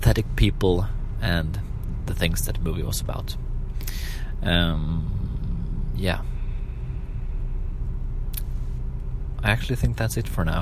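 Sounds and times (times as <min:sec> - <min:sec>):
steady low rumble inside a car: 0:00.0 - 0:10.6
speech: 0:00.1 - 0:05.2, 0:06.0 - 0:06.3, 0:09.4 - 0:10.6
faint click: 0:08.3 - 0:09.1.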